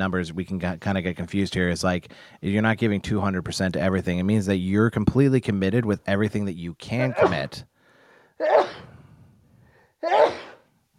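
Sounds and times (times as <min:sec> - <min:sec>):
speech: 0:00.0 - 0:07.7, 0:08.4 - 0:08.8, 0:10.0 - 0:10.4
person sneezing: 0:07.1 - 0:07.5, 0:08.4 - 0:09.0, 0:10.0 - 0:10.7.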